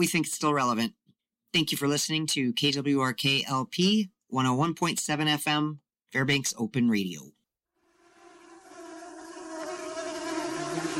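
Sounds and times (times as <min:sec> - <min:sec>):
speech: 0:00.0 - 0:07.4
many mosquitoes whining in a thicket in the Brooks Range, northern Alaska: 0:07.8 - 0:10.9.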